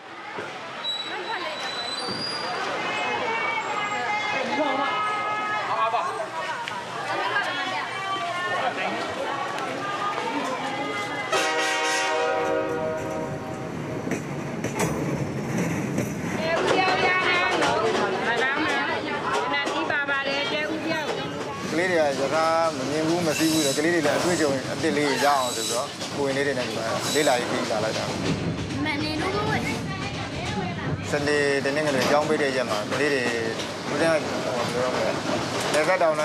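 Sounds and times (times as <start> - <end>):
people chattering: 0.0 - 36.2
train rumbling on rails over a narrow high viaduct: 10.1 - 36.2
train horn: 11.3 - 13.7.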